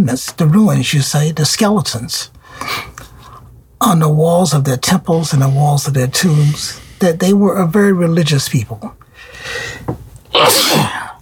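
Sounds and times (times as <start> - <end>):
speech: 0.0 - 2.9, 3.8 - 11.0
faint hum: 0.0 - 11.2
sharp intake of breath: 2.4 - 3.4, 9.1 - 9.9
loud sneeze: 10.3 - 11.2.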